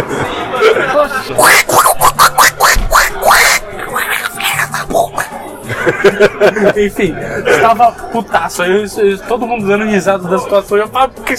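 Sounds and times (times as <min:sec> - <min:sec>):
laughter: 0:00.0 - 0:08.5
person doing an angry cartoon-duck voice imitation with raspy quacking: 0:01.4 - 0:05.3
speech: 0:06.2 - 0:11.3.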